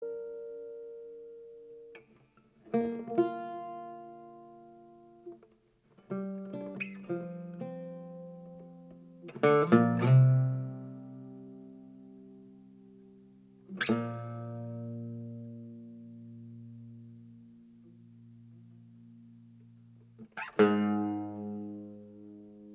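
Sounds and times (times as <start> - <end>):
octave mandola improvisation: 2.7 - 5.4, 6.1 - 12.4, 13.7 - 22.7.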